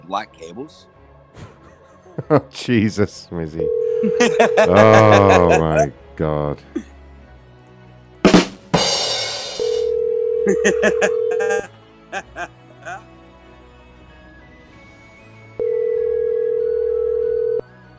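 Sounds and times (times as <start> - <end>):
speech: 0.1 - 1.5, 2.2 - 6.9, 10.4 - 11.2
laughter: 1.4 - 5.9, 10.5 - 13.0
telephone ringing unanswered: 3.6 - 5.0, 9.6 - 11.6, 15.6 - 17.6.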